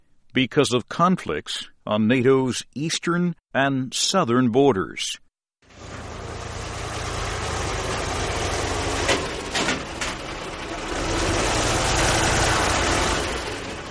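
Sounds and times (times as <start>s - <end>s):
speech: 0.4s - 5.2s
heavy engines of armored personnel carriers and tanks idling in Afghanistan: 5.7s - 13.8s.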